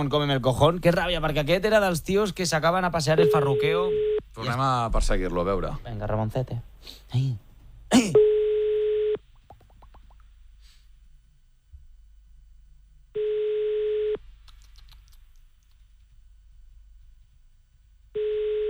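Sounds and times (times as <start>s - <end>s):
speech: 0.0s - 8.3s
telephone ringback tone: 8.2s - 9.2s, 13.2s - 14.2s, 18.2s - 18.6s.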